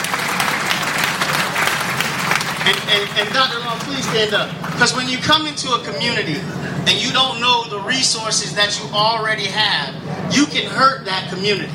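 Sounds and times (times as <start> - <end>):
audience applause at a community gathering: 0.0 - 5.0
speech: 2.6 - 11.7.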